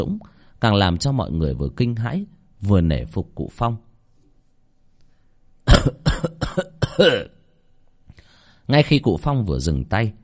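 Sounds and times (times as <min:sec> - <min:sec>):
speech: 0:00.0 - 0:03.8, 0:05.7 - 0:06.0, 0:06.6 - 0:07.4, 0:08.7 - 0:10.2
man coughing after lying unconscious: 0:05.6 - 0:07.4.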